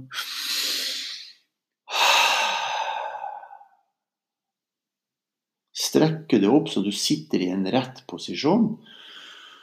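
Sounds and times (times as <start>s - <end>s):
slow deep breaths in a breathing demonstration: 0.1s - 3.9s, 8.8s - 9.6s
speech: 5.9s - 9.0s.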